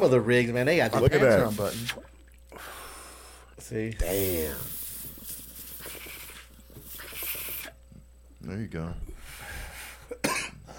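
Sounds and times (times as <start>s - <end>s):
speech: 0.0s - 2.7s, 3.6s - 4.8s, 8.4s - 9.1s
man giving a sharp raspy cough: 10.1s - 10.7s.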